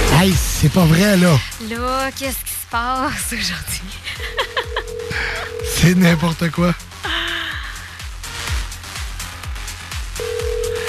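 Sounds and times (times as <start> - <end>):
speech: 0.2 - 4.4, 5.2 - 6.9
laughter: 4.0 - 6.4
telephone ringing with a steady electronic tone: 4.3 - 6.3, 10.2 - 10.8.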